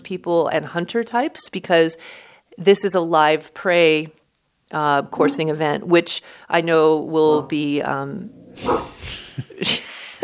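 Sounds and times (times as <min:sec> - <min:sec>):
speech: 0:00.1 - 0:09.9
dog barking and yipping: 0:08.6 - 0:09.0.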